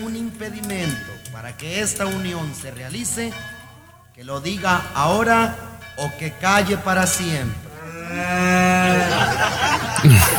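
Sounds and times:
speech: 0:00.0 - 0:03.6, 0:04.2 - 0:10.3
cow mooing at a wedding: 0:07.8 - 0:09.2
laughter: 0:08.4 - 0:10.3.

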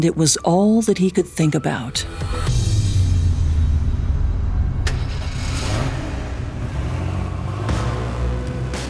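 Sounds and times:
speech: 0:00.0 - 0:02.6
car engine running with a low rumbling drone: 0:02.5 - 0:08.8.

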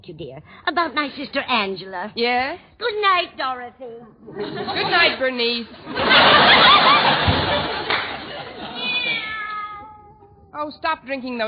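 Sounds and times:
speech: 0:00.0 - 0:07.6, 0:10.5 - 0:11.4
laughter: 0:04.3 - 0:09.3
cat meowing: 0:08.7 - 0:10.5.

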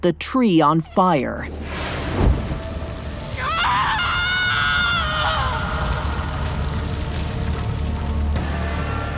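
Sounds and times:
speech: 0:00.0 - 0:02.4
rain: 0:01.6 - 0:09.1
woman screaming: 0:03.4 - 0:06.3.

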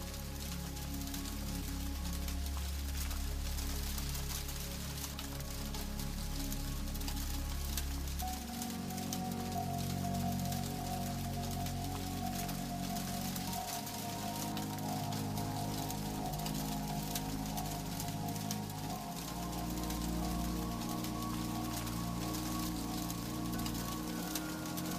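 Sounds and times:
rain pattering on a rooftop: 0:00.0 - 0:24.9
slow sustained music with low tones: 0:00.0 - 0:24.9.

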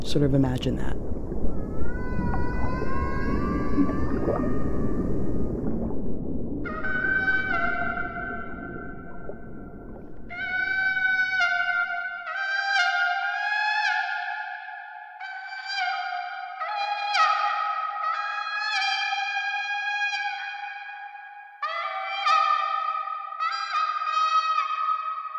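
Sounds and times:
low constant rumble: 0:00.0 - 0:11.4
speech: 0:00.1 - 0:01.2, 0:03.8 - 0:05.0
whale song from migrating whales out at sea: 0:00.9 - 0:25.3.

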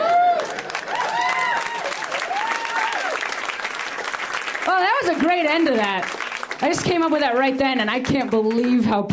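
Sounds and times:
people whooping and cheering: 0:00.0 - 0:03.6
crowd applauding: 0:00.0 - 0:09.0
speech: 0:05.0 - 0:09.1.

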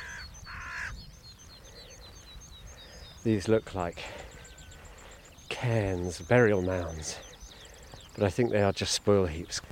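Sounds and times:
carrion crow cawing: 0:00.0 - 0:01.0
small birds chirping: 0:00.0 - 0:09.7
speech: 0:03.2 - 0:04.2, 0:05.6 - 0:07.3, 0:08.2 - 0:09.7.

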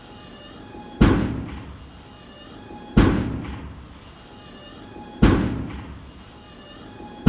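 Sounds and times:
heavy booming stomps of a giant robot: 0:01.0 - 0:01.8, 0:03.0 - 0:03.9, 0:05.2 - 0:06.1.

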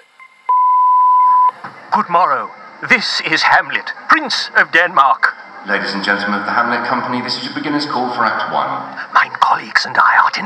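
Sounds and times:
answering machine beep: 0:00.2 - 0:01.6
speech: 0:02.0 - 0:10.4.

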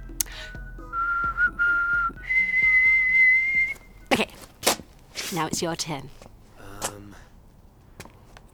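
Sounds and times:
person whistling a short tune: 0:00.0 - 0:04.0
speech: 0:05.3 - 0:06.2.

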